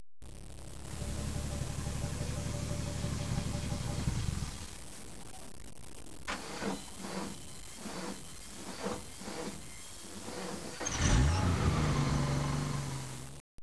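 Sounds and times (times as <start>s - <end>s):
traffic: 0.9s - 4.8s, 10.2s - 13.4s.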